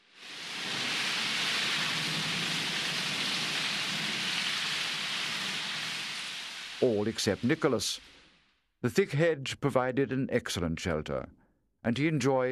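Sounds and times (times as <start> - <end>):
heavy rain pouring down: 0.0 - 8.4
speech: 6.8 - 8.1, 8.8 - 12.4.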